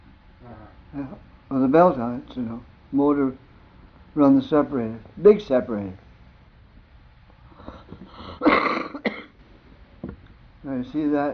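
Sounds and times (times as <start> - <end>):
speech: 0.4 - 3.5, 4.2 - 6.0, 10.7 - 11.3
person coughing to loosen phlegm after aspirin with coffee: 8.2 - 9.4.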